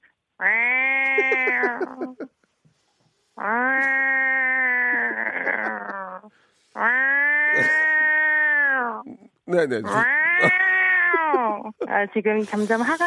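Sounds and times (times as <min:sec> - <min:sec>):
speech: 0:00.4 - 0:00.7, 0:01.5 - 0:02.4, 0:09.6 - 0:10.6, 0:11.8 - 0:13.0
agitated cat yowling: 0:00.4 - 0:02.2, 0:03.4 - 0:06.2, 0:06.8 - 0:09.0, 0:09.9 - 0:11.7
laughter: 0:01.0 - 0:02.3, 0:04.8 - 0:06.0, 0:07.6 - 0:07.8, 0:11.1 - 0:12.0.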